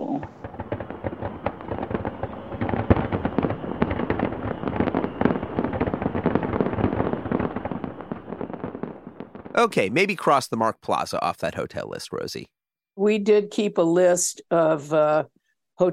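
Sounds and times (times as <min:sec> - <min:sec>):
fireworks exploding: 0:00.0 - 0:12.3
speech: 0:09.6 - 0:15.9.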